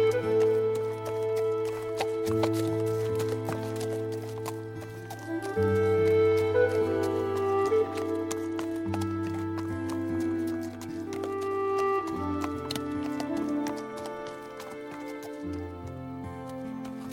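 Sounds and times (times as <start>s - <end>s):
horse hooves clip-clopping: 0.0s - 17.1s
sustained music with low droning tones: 0.0s - 17.1s.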